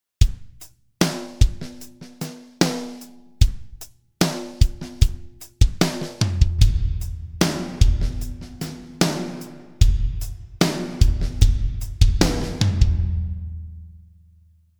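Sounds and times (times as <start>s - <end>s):
drums in a hall: 0.0s - 13.9s.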